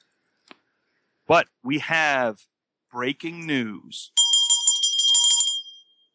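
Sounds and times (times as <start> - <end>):
speech: 1.3 - 4.2
small bell ringing in a rattling trill: 4.2 - 6.1.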